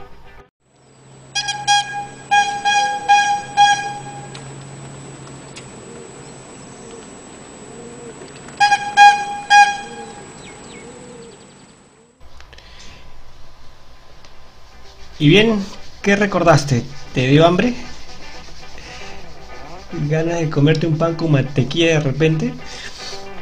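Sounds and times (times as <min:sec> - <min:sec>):
outdoor street hum: 0:00.0 - 0:20.0
street bread vendor's horn honking: 0:01.3 - 0:04.6, 0:08.6 - 0:10.4
speech: 0:15.2 - 0:18.0, 0:20.1 - 0:22.8.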